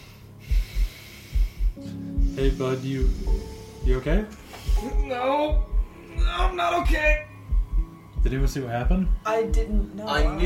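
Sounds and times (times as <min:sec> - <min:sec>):
person imitating heavy breathing: 0:00.0 - 0:05.0
speech: 0:01.8 - 0:05.7, 0:06.3 - 0:07.2, 0:08.3 - 0:10.4.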